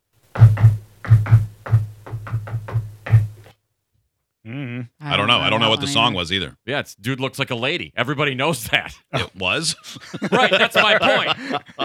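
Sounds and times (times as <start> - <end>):
firm knocks in a rhythmic pattern: 0.3 - 3.4
speech: 5.4 - 11.8
laughter: 9.1 - 11.8.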